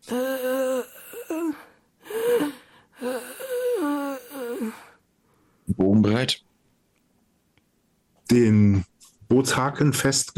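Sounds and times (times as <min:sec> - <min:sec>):
person whimpering and sobbing: 0:00.0 - 0:05.0
ragged heavy breathing: 0:00.0 - 0:05.6
speech: 0:08.3 - 0:08.8, 0:09.4 - 0:10.3.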